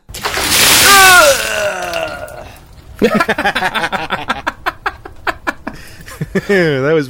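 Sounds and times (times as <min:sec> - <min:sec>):
water thrown in someone's face: 0:00.1 - 0:02.7
person spluttering and gasping: 0:00.2 - 0:02.6
person crying out: 0:00.7 - 0:02.6
speech: 0:03.0 - 0:04.0, 0:06.5 - 0:07.0
laughter: 0:03.0 - 0:06.7.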